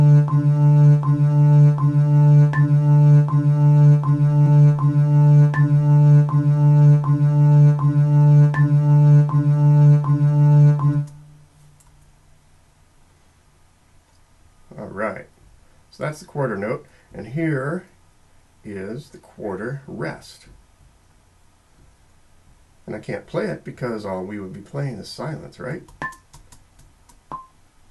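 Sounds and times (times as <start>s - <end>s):
metronome ticking at eighty beats per minute with accented fourth click: 0.0s - 11.4s, 25.8s - 27.6s
constant low hum: 0.0s - 26.0s
speech: 23.0s - 26.2s.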